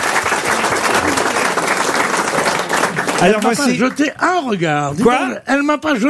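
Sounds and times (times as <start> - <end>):
audience applauding: 0.0 - 4.1
speech: 3.2 - 6.0.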